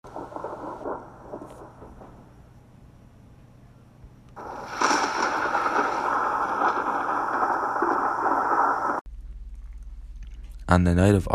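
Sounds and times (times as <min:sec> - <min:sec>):
stormy wind roaring: 0:00.0 - 0:02.8, 0:04.4 - 0:09.0
heavy pouring rain: 0:04.4 - 0:09.0
speech: 0:10.7 - 0:11.3.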